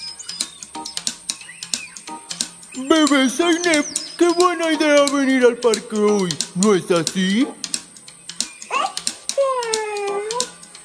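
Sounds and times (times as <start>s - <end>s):
cat chirping: 0.0s - 5.3s, 8.4s - 10.6s
sharp tapping clicks: 0.3s - 10.8s
speech: 2.8s - 7.6s.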